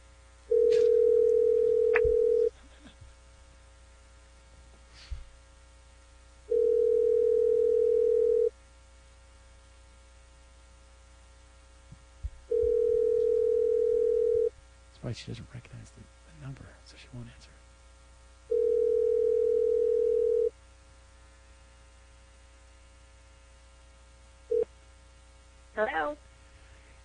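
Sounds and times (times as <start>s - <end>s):
telephone ringback tone on an outgoing prank phone call: 0.5s - 2.5s, 6.5s - 8.5s, 12.5s - 14.5s, 18.5s - 20.5s
speech: 15.2s - 17.6s.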